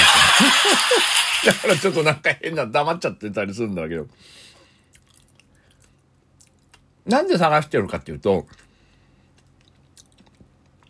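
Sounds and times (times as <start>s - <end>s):
laughter: 0.0s - 2.2s
speech: 0.8s - 4.5s, 7.1s - 8.6s
chewing food during a meal: 4.9s - 6.9s, 8.4s - 10.8s.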